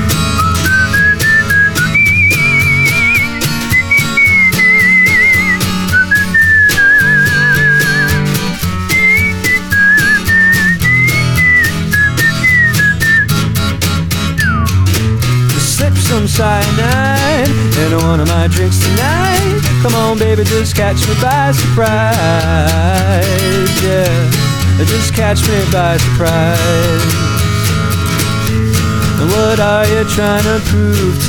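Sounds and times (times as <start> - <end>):
full band backing with steady drums: 0.0 - 31.2
bright whistled melody: 0.2 - 13.6, 14.2 - 15.0
speech: 19.8 - 27.3, 29.2 - 31.2.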